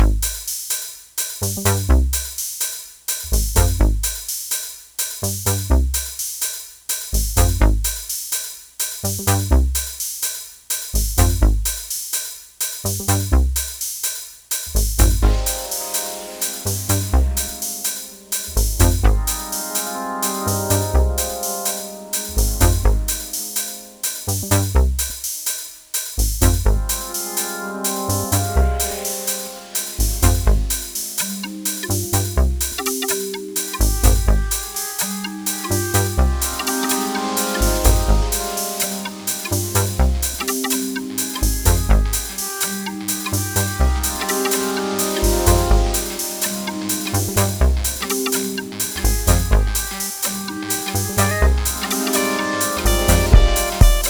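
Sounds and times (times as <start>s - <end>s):
bassline waves: 0.0s - 0.5s, 1.4s - 2.4s, 3.2s - 4.3s, 5.2s - 6.2s, 7.1s - 8.1s, 9.0s - 10.0s, 10.9s - 11.9s, 12.8s - 13.8s, 14.6s - 21.6s, 22.2s - 23.6s, 24.2s - 25.3s, 26.2s - 27.3s, 27.9s - 29.2s, 29.9s - 31.2s, 31.8s - 33.0s, 33.7s - 34.8s, 35.5s - 44.4s, 45.0s - 54.0s.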